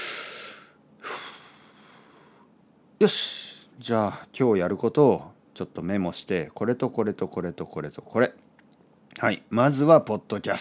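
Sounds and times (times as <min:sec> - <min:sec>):
quiet deep breathing: 0:00.0 - 0:02.5
speech: 0:03.0 - 0:08.3, 0:09.2 - 0:10.5.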